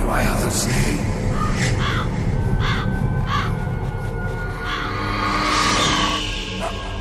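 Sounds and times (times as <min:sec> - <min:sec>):
speech: 0:00.2 - 0:01.2
ravens cawing: 0:01.3 - 0:06.9.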